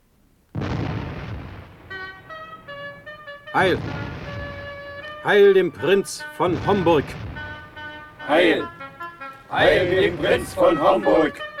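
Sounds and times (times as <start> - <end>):
single cannon shot fired in a battle: 0.6 - 2.6, 3.6 - 5.3, 6.4 - 8.4
speech: 3.6 - 4.2, 5.2 - 7.3, 8.3 - 8.8, 9.5 - 11.5.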